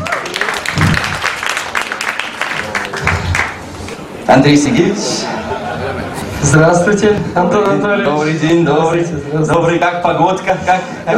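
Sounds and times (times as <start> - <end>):
crowd applauding: 0.0 - 4.1
speech: 4.3 - 5.4, 6.4 - 11.1
laughter: 4.7 - 6.9.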